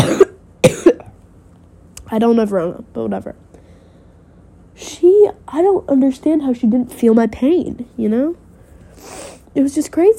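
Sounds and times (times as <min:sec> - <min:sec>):
person coughing harshly: 0:00.0 - 0:01.2
speech: 0:02.1 - 0:03.5, 0:05.0 - 0:08.4, 0:09.0 - 0:10.1.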